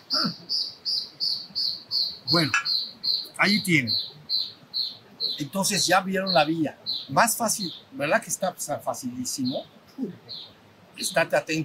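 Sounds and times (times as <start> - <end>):
bird singing high bright chirps: 0.0 - 11.6
faint noise: 0.0 - 11.6
speech: 0.1 - 0.8, 2.3 - 2.7, 3.4 - 4.1, 5.4 - 11.6.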